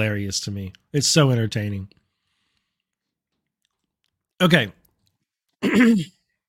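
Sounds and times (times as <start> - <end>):
speech: 0.0 - 2.0, 4.4 - 4.8, 5.6 - 6.2
throat clearing with a rough gravelly rasp: 5.6 - 6.2.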